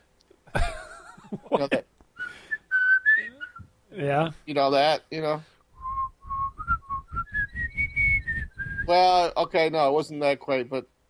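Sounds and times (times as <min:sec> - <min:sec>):
speech: 0:01.5 - 0:01.9, 0:04.0 - 0:05.5, 0:08.9 - 0:10.9
person whistling a commercial jingle: 0:02.2 - 0:03.6, 0:05.8 - 0:08.9.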